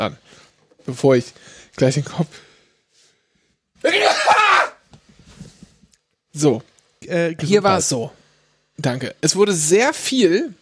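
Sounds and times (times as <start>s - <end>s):
speech: 0.0s - 2.5s, 3.8s - 4.1s, 6.4s - 8.2s, 8.8s - 10.6s
faint sniffs and breaths: 1.4s - 3.7s
loud sneeze: 3.8s - 4.8s.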